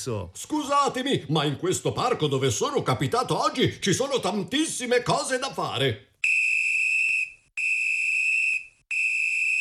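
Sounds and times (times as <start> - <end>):
speech: 0.0 - 6.1
shrill whistle blasts: 6.2 - 9.5.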